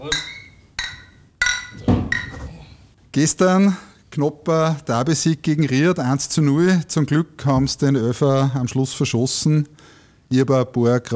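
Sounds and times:
speech: 0.0 - 0.3, 3.2 - 11.1
glasses clinking together in a toast: 0.0 - 2.6.

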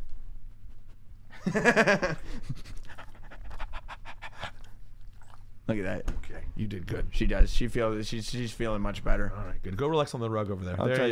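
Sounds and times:
speech: 1.4 - 2.7, 5.7 - 11.0
female dog panting: 2.2 - 5.6.

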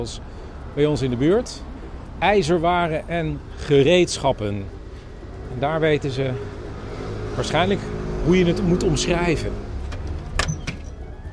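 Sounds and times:
speech: 0.0 - 4.8, 5.5 - 6.6, 7.4 - 9.7
steady low rumble: 0.0 - 10.3
shop door opening and swinging shut: 9.8 - 11.3.

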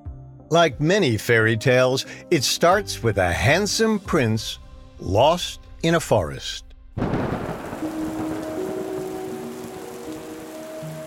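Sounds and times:
speech: 0.5 - 7.1
low rumble of thunder: 6.9 - 11.0
steady rain in a forest: 7.0 - 11.0
soft sustained musical tones: 7.6 - 11.0.

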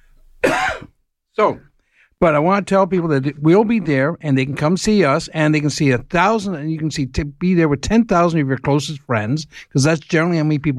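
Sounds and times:
man coughing: 0.4 - 1.0
speech: 1.4 - 10.7.

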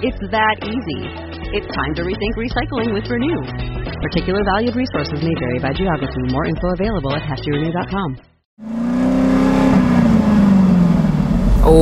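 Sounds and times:
speech: 0.0 - 8.8
car engine revving: 8.6 - 11.7.

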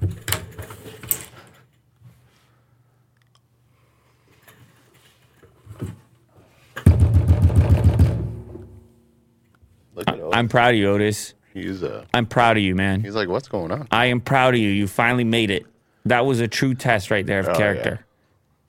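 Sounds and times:
rapid knocking on a door: 6.9 - 8.5
speech: 10.4 - 18.0.

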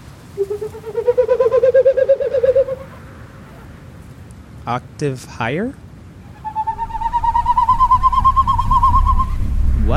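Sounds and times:
bird cooing: 0.3 - 3.6, 6.3 - 9.4
speech: 0.7 - 1.0, 4.7 - 5.8.

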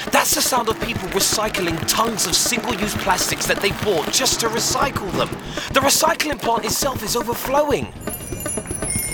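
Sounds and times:
speech: 0.2 - 8.3
bicycle bells ringing on a road full of bikes: 8.0 - 9.1.

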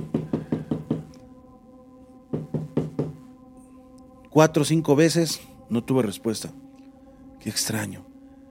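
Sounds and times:
knocking firmly on a door: 0.0 - 1.2, 2.3 - 3.3
speech: 4.4 - 6.6, 7.4 - 8.1.

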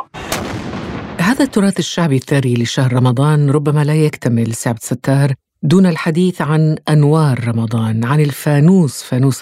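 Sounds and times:
Ramadan iftar cannon firing at sunset: 0.1 - 2.1
speech: 1.3 - 9.3.

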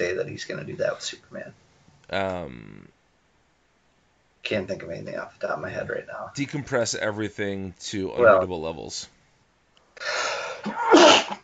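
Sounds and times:
speech: 0.0 - 3.0, 4.4 - 9.2, 10.0 - 11.4
person sneezing: 10.0 - 11.4.

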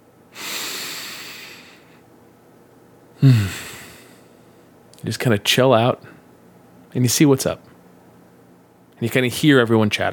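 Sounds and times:
long deep inhale: 0.3 - 2.0, 3.2 - 4.7
speech: 3.2 - 3.8, 5.0 - 6.2, 6.9 - 7.7, 9.0 - 10.1.

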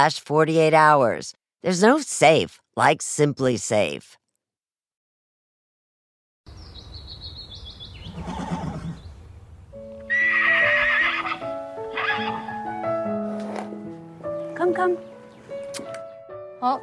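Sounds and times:
speech: 0.0 - 4.2, 14.8 - 15.1, 16.6 - 16.8
faint bird chirps: 6.5 - 9.4
horse whinnying: 8.0 - 9.1, 10.0 - 12.5.

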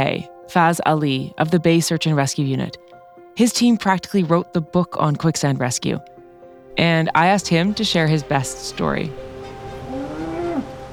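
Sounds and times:
speech: 0.0 - 6.1, 6.8 - 9.3
cow mooing: 9.8 - 10.8.

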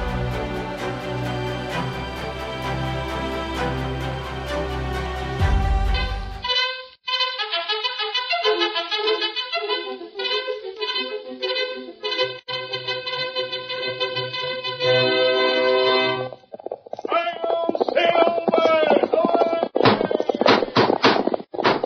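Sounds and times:
brisk orchestral music: 0.0 - 16.3
galloping horse hoofbeats: 16.2 - 21.8
man speaking dramatically: 17.1 - 20.4.

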